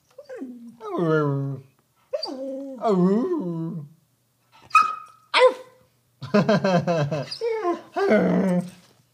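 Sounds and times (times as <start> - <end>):
dog whimpering: 0.2 - 3.9, 7.2 - 8.8
dog barking and yapping: 4.7 - 5.8.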